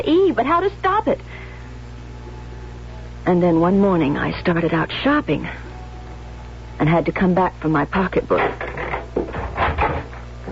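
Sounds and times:
speech: 0:00.0 - 0:01.4, 0:03.2 - 0:05.7, 0:06.8 - 0:08.8
wooden door opening and closing: 0:08.3 - 0:10.5.

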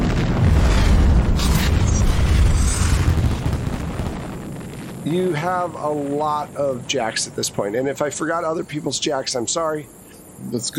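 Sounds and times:
massive explosion with deep rumbling boom and crackling debris: 0:00.0 - 0:07.4
speech: 0:05.1 - 0:10.7.

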